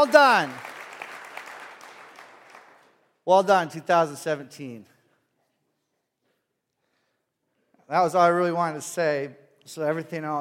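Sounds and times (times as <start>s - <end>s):
speech: 0.0s - 0.7s, 3.2s - 4.9s, 7.9s - 10.3s
room full of people applauding: 0.0s - 2.9s.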